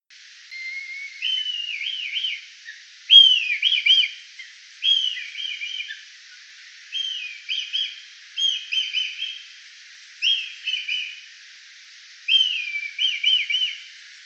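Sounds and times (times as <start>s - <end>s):
kite whinnying with tremulous whistled phrases: 0.5s - 6.1s, 6.9s - 9.5s, 10.2s - 11.3s, 12.3s - 14.0s.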